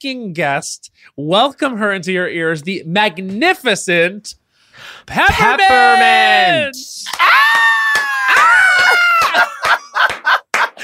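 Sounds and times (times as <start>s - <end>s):
speech: 0.0s - 7.7s
high-pitched joyful scream: 5.4s - 10.2s
laughter: 8.2s - 10.8s.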